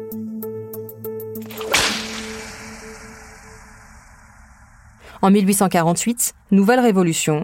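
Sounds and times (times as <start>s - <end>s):
whip crack: 1.4s - 4.6s
speech: 5.2s - 7.4s.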